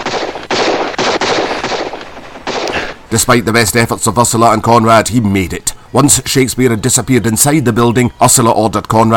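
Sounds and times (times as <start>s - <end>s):
gunfire around 11th-century Norman stonework: 0.0s - 3.0s
speech: 3.1s - 9.1s.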